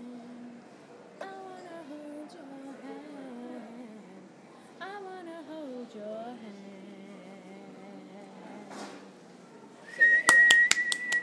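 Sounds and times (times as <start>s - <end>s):
loud whistle: 9.9s - 11.2s.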